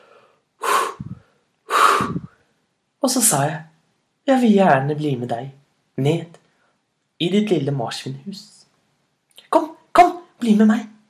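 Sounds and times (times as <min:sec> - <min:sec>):
person performing heavy breathing: 0:00.0 - 0:02.5
speech: 0:03.0 - 0:06.4, 0:07.2 - 0:08.6, 0:09.5 - 0:09.8, 0:10.4 - 0:10.9.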